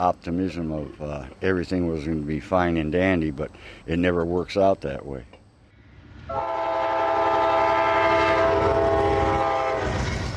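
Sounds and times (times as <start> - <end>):
speech: 0.0 - 5.4, 6.3 - 6.5
freight train rolling past with heavy low rumble: 5.8 - 10.3
freight train horn blaring: 6.3 - 10.2.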